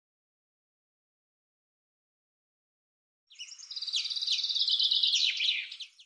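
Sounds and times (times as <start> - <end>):
common chaffinch singing: 3.3 - 6.0.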